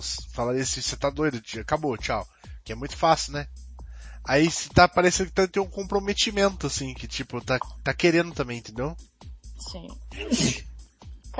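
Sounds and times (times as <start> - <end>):
speech: 0.0 - 3.6, 4.2 - 10.6
person laughing: 10.1 - 10.6
loud sneeze: 10.1 - 10.7.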